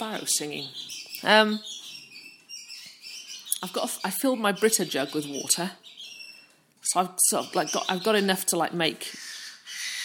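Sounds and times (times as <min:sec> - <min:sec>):
speech: 0:00.2 - 0:01.8, 0:03.6 - 0:06.0, 0:06.9 - 0:09.3
cockatiel screeching: 0:09.1 - 0:10.0.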